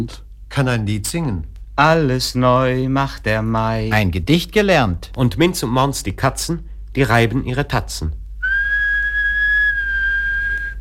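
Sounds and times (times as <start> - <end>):
speech: 0.0 - 8.2
low constant hum: 0.0 - 10.7
person whistling a sustained high note: 8.4 - 10.7.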